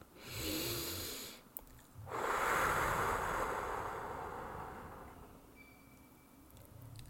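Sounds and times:
breathy inhale: 0:00.2 - 0:01.4, 0:02.1 - 0:05.3
long steady exhale: 0:00.2 - 0:01.4, 0:02.0 - 0:05.4.

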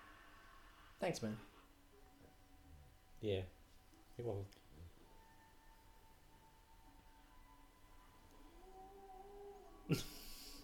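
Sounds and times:
speech: 0:01.0 - 0:01.5, 0:03.2 - 0:03.6, 0:04.2 - 0:04.6, 0:09.9 - 0:10.2
person imitating a wolf howl: 0:08.4 - 0:10.1.

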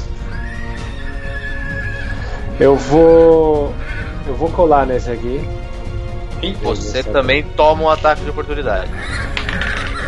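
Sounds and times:
agitated horses neighing and whinnying: 0:00.2 - 0:04.2, 0:08.8 - 0:10.0
speech: 0:02.6 - 0:05.7, 0:06.4 - 0:09.6.

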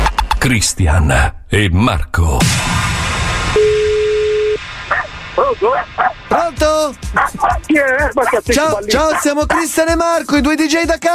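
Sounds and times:
speech: 0:00.4 - 0:02.8, 0:05.4 - 0:11.1
steady electronic beep: 0:03.6 - 0:04.6
dog barking: 0:04.9 - 0:06.2, 0:07.1 - 0:09.8.

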